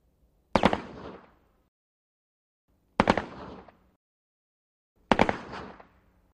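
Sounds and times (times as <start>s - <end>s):
distant AK47 rifle double taps: 0.5s - 1.4s, 3.0s - 4.0s, 5.0s - 6.2s.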